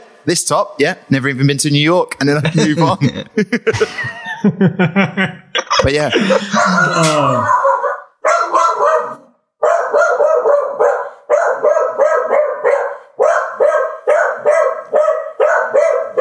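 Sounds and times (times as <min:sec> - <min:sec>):
speech: 0:00.2 - 0:07.6
laughter: 0:02.3 - 0:07.7
dog barking frantically at a delivery: 0:06.2 - 0:16.1.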